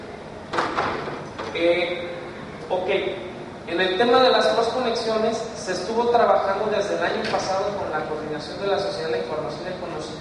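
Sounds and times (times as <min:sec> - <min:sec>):
door being closed during a presentation: 0:00.5 - 0:01.6
speech: 0:01.6 - 0:10.1.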